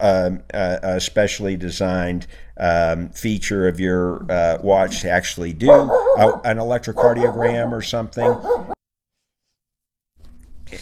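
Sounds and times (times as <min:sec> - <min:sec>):
low steady hum: 0:00.0 - 0:08.7
speech: 0:00.0 - 0:08.7
puppy squealing in a studio: 0:04.2 - 0:08.8.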